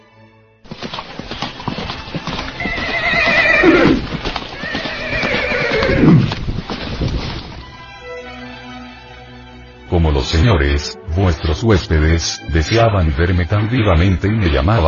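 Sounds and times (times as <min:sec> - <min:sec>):
horse hooves clip-clopping: 0:00.6 - 0:08.1
horse neighing: 0:02.4 - 0:06.4
speech: 0:10.4 - 0:14.8.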